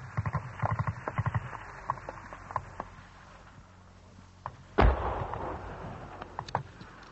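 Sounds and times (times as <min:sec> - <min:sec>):
rumbling battlefield background: 0:00.0 - 0:07.1
heavy booming artillery blast: 0:04.8 - 0:06.8
incoming gunfire from Argentine batteries around Stanley: 0:04.8 - 0:06.8.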